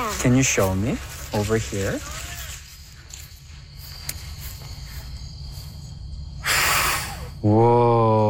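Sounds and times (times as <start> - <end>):
quiet hum: 0.0 - 8.2
speech: 0.2 - 2.2, 7.4 - 7.9
child blowing a puff of air: 6.4 - 7.3.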